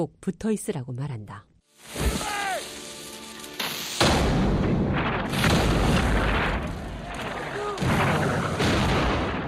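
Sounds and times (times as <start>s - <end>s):
speech: 0.0s - 2.3s
person shouting: 2.1s - 2.7s
heavy cannon artillery fire in battle: 4.0s - 9.4s.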